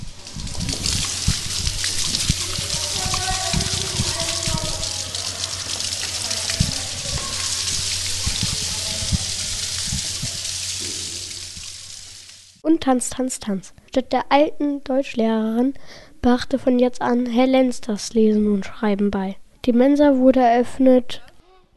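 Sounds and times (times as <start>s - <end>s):
water splashing and churning during a school swimming lesson: 0.0s - 12.6s
faint voices: 2.0s - 10.5s
speech: 12.7s - 21.3s.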